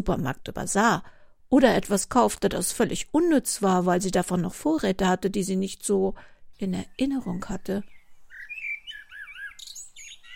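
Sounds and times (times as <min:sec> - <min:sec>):
speech: 0:00.0 - 0:07.9
small bird chirping and trilling in herb planters: 0:06.7 - 0:10.3.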